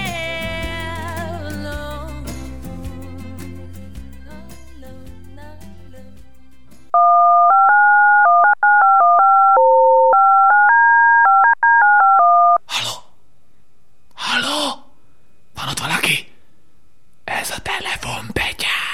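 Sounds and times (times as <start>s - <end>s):
telephone keypad dialing tones: 6.9s - 12.6s
breathy whispered voice: 17.3s - 18.9s.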